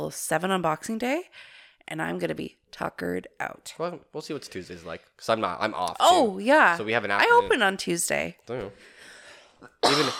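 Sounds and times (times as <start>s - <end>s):
speech: 0.0s - 10.1s
person coughing: 9.7s - 10.1s.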